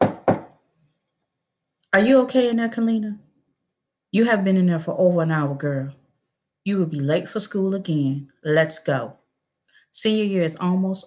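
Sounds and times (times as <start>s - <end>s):
firm knocking on a door: 0.0s - 0.6s
speech: 1.9s - 3.2s, 4.1s - 6.0s, 6.6s - 9.2s, 9.9s - 11.0s.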